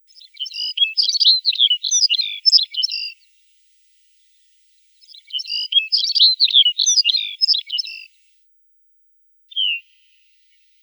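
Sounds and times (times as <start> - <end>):
Lapland longspur tumbling warble of high twittering notes: 0.0 - 3.2, 4.9 - 8.1, 9.5 - 10.2
Lapland longspur short descending whistled call: 0.1 - 3.1, 5.0 - 8.1, 9.5 - 10.2.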